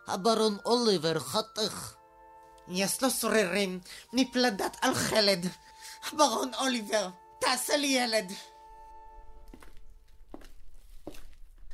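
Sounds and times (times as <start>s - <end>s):
speech: 0.1s - 2.0s, 2.7s - 8.5s
footsteps on a hard floor beyond a door: 9.4s - 11.7s.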